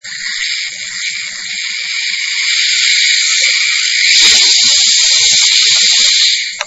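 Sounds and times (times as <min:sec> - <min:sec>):
snake: 0:00.0 - 0:06.6.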